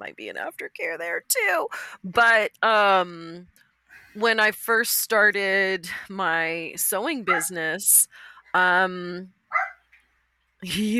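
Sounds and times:
speech: 0.0 - 3.6, 4.2 - 9.4, 10.6 - 10.9
small dog barking: 9.5 - 9.8.

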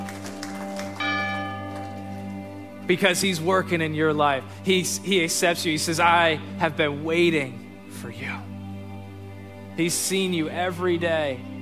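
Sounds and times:
church bell ringing: 0.0 - 6.6
speech: 2.9 - 8.5, 9.8 - 11.5.

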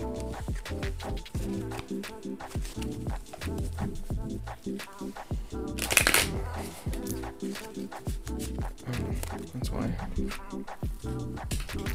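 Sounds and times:
tarot cards being shuffled: 0.0 - 4.0, 5.8 - 9.6
soft continuous music: 0.0 - 11.9.

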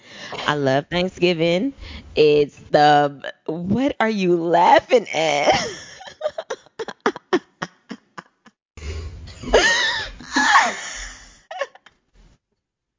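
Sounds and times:
speech: 0.3 - 5.8
harsh strained coughing after inhaling: 9.4 - 11.8.

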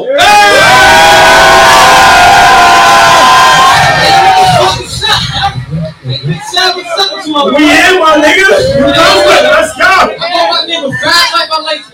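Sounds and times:
loud live crowd cheering and whooping for a performer: 0.2 - 5.1
lingering crowd murmurs: 3.9 - 11.9.

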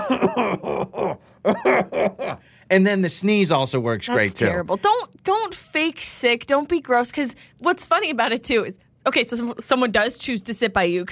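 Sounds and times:
person fake coughing aloud: 0.0 - 2.4
speech: 0.1 - 11.0.

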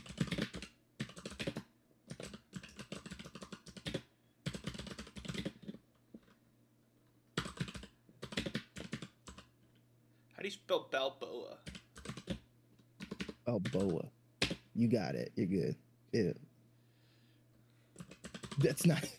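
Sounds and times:
typing on a computer keyboard: 0.0 - 6.4, 7.3 - 9.5, 11.6 - 14.7, 17.9 - 18.7
speech: 10.4 - 11.7, 13.5 - 14.0, 14.8 - 16.4, 18.6 - 19.1.

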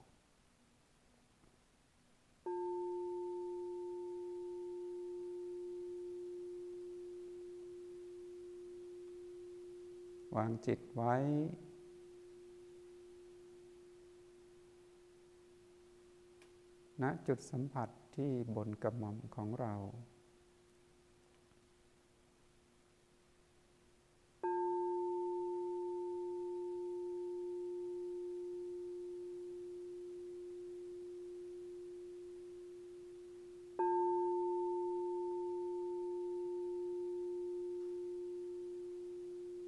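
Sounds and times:
soft steady hum: 0.0 - 39.6
meditation bell ringing: 2.5 - 17.0, 24.4 - 39.6
speech: 10.3 - 11.7, 17.0 - 20.1.

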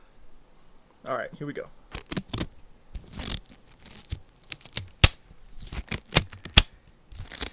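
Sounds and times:
speech: 1.0 - 1.8
rubbery gloves crinkling and snapping as pulled onto hands: 1.9 - 7.5.

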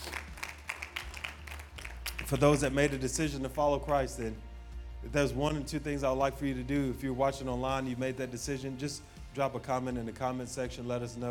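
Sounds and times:
group of people clapping their hands: 0.0 - 3.3
speech: 2.3 - 11.2.

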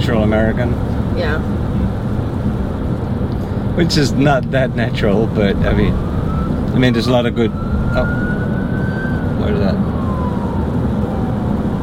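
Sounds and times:
dense rumble of traffic: 0.0 - 11.8
speech: 0.1 - 2.0, 3.8 - 8.3, 9.4 - 10.0
emergency vehicle siren passing: 4.5 - 11.8.

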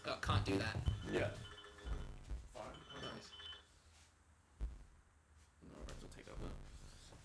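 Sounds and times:
speech: 0.0 - 1.5
mobile phone ringtone with bright electronic beeping melody: 0.8 - 3.7.

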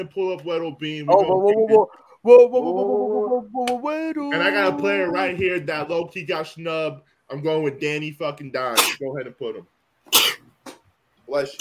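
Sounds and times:
speech: 0.0 - 10.2, 11.3 - 11.5
sneeze: 8.8 - 9.0, 10.1 - 10.4.

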